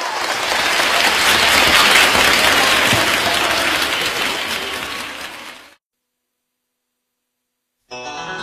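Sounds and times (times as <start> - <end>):
audience applause: 0.0 - 5.8.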